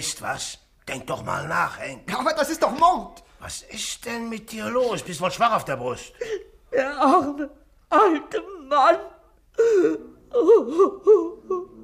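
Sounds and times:
speech: 0.0s - 11.8s
person crying and wailing in a drama scene: 6.1s - 9.0s, 9.6s - 11.8s.

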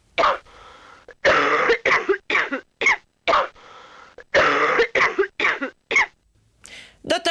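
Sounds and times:
harsh coughing: 0.2s - 0.5s, 1.1s - 6.2s.

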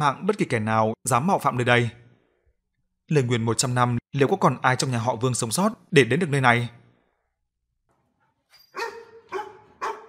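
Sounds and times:
speech: 0.0s - 2.0s, 3.1s - 6.8s
dog barking at night toward the foot of a mountain: 8.7s - 10.0s.

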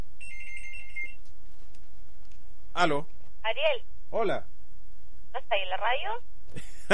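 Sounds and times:
steady low hum: 0.0s - 6.9s
telephone ringing with a high warbling electronic ring: 0.2s - 1.2s
speech: 2.8s - 4.5s, 5.3s - 6.9s.

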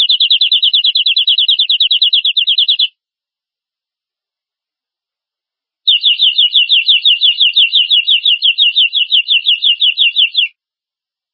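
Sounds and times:
domestic canary trill of sliding notes: 0.0s - 3.0s, 5.9s - 10.6s.

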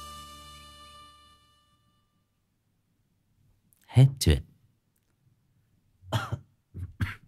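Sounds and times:
speech: 4.0s - 4.5s
person coughing harsh chesty coughs: 6.1s - 7.2s.

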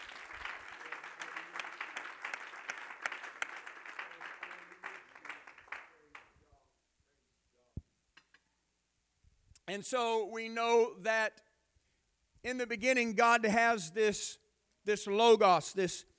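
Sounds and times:
church congregation clapping hands during a sermon: 0.0s - 6.5s
speech: 9.7s - 11.4s, 12.4s - 16.1s.

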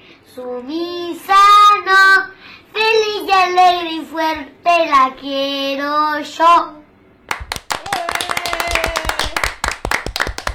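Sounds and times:
speech: 0.4s - 2.3s, 3.4s - 6.8s
applause for a child after a sung performance: 7.3s - 10.5s.

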